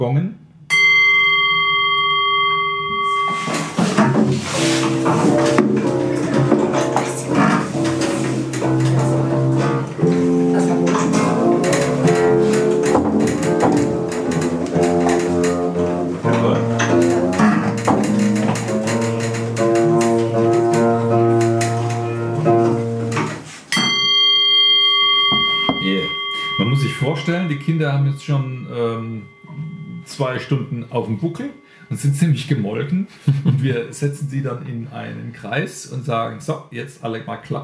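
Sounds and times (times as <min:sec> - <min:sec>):
speech: 0:00.0 - 0:00.4, 0:27.7 - 0:29.4, 0:30.2 - 0:37.6
gong being struck: 0:00.7 - 0:31.7
busy music: 0:02.8 - 0:31.6
laughter: 0:33.2 - 0:33.8.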